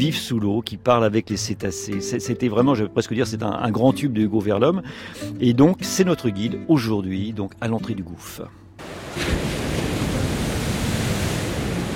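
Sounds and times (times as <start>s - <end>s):
speech: 0.0s - 8.6s
Atlantic ocean surf waves: 8.8s - 11.9s.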